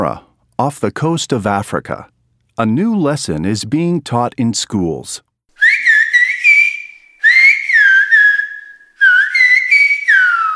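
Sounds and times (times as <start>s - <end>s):
speech: 0.0s - 5.3s
Silbo Gomero whistled language: 5.6s - 10.5s.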